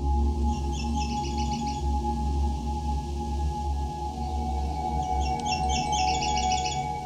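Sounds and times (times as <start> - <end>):
Nashville Warbler singing: 0.1 - 2.2, 3.5 - 7.0.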